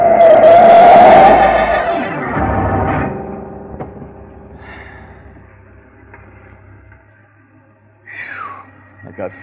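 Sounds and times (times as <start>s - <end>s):
car tires screeching while skidding: 0.0s - 3.2s
car engine roaring while speeding up: 0.0s - 6.9s.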